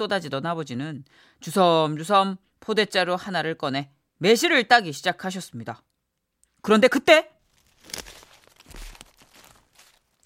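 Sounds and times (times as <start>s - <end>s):
speech: 0.0s - 5.9s, 6.6s - 8.1s
footsteps crunching on dry ground or leaves outdoors: 7.5s - 10.2s.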